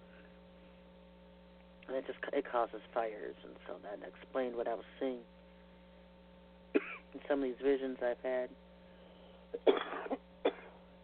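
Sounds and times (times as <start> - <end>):
speech: 1.9 - 5.4, 7.1 - 8.6, 9.5 - 10.2
person coughing fit: 6.8 - 7.2, 9.5 - 10.8.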